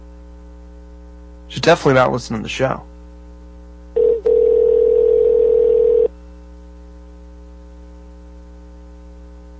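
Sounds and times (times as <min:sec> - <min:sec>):
speech: 0:01.5 - 0:02.9
ringback tone of an unanswered telephone call: 0:04.0 - 0:06.1.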